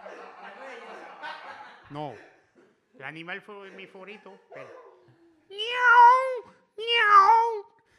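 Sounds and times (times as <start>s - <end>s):
laughter: 0.0s - 1.9s
speech: 1.9s - 2.3s, 3.0s - 4.8s, 5.8s - 7.6s
cat meowing: 5.5s - 7.7s.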